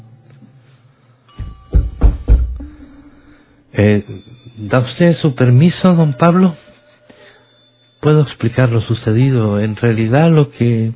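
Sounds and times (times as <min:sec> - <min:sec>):
heavy knocking on a door: 0:01.4 - 0:02.7
soft bump: 0:01.4 - 0:02.7
speech: 0:03.8 - 0:06.6, 0:08.0 - 0:10.9.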